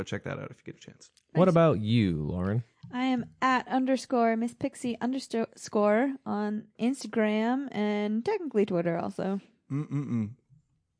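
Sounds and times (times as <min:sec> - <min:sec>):
speech: 0:00.0 - 0:10.4
person yawning: 0:09.7 - 0:10.3.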